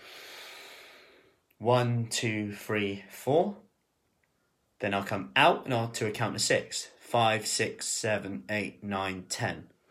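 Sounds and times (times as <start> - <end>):
long steady inhalation through the nose: 0.0 - 1.4
speech: 1.6 - 3.7, 4.8 - 9.7.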